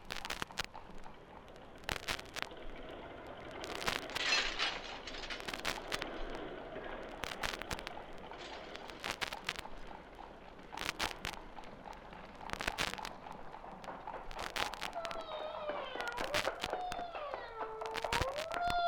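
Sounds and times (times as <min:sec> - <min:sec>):
sharp irregular clanks and cracks of a drawbridge: 0:00.0 - 0:18.7
heavy drawbridge lowering: 0:00.4 - 0:18.4
rough grinding rush of a drawbridge: 0:01.6 - 0:15.0.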